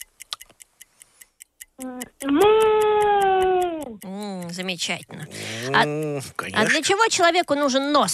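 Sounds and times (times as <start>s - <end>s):
clock ticking: 0.0s - 8.1s
speech: 1.8s - 2.6s, 4.0s - 8.1s
child imitating a cat meow: 1.8s - 4.0s.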